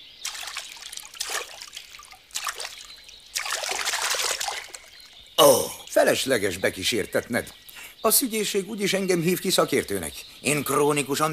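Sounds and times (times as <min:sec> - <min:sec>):
water being poured to put out a fire: 0:00.2 - 0:05.4
speech: 0:05.4 - 0:11.3.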